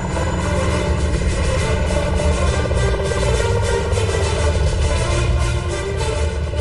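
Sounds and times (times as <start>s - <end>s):
Sikorsky heavy transport helicopter approaching: 0.0s - 6.6s.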